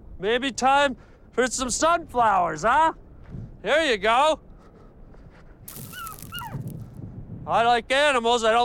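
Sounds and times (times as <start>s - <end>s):
speech: 0.2s - 3.0s, 3.6s - 4.5s, 7.5s - 8.6s
wild dog whining yelps: 5.8s - 6.7s.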